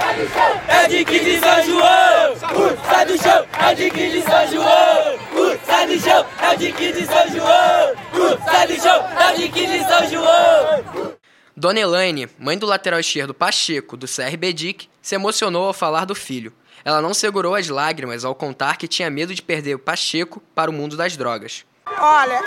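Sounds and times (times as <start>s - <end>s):
large crowd of football supporters chanting at a final: 0.0s - 11.2s
speech: 0.2s - 22.4s.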